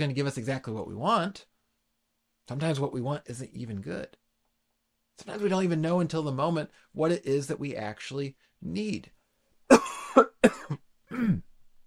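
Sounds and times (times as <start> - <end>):
speech: 0.0 - 1.5, 2.5 - 4.2, 5.2 - 11.5
harsh coughing and throat clearing: 9.7 - 11.5.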